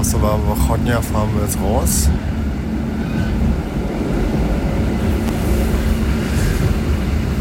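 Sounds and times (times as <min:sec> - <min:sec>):
older-model train rattling as it pulls out, heard from on board: 0:00.0 - 0:07.3
speech: 0:00.1 - 0:02.4
faint higher squeals of an older-model train: 0:02.9 - 0:03.6.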